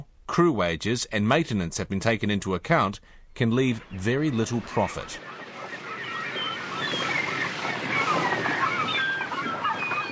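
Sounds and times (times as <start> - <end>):
speech: 0.3 - 5.4
water lapping around a 40-year-old fishing boat moored at a marina in Wellington: 5.2 - 10.1.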